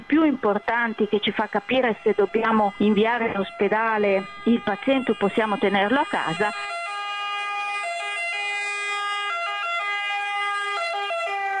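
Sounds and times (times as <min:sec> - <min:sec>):
ambulance siren wailing: 0:00.0 - 0:11.5
speech: 0:00.2 - 0:06.7.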